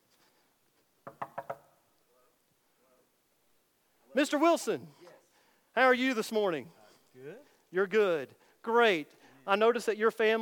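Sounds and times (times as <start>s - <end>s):
knocking on a wooden door: 1.0s - 1.7s
speech: 4.2s - 5.1s, 5.8s - 10.4s.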